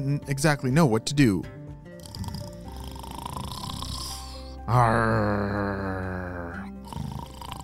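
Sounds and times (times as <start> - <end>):
speech: 0.0 - 1.6, 4.7 - 6.2
man snoring loudly with a throaty snort: 1.9 - 7.6.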